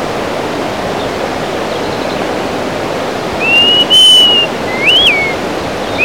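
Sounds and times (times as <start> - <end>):
constant rushing noise: 0.0 - 6.0
greater pewee giving plaintive whistles and slurred notes: 3.4 - 6.0.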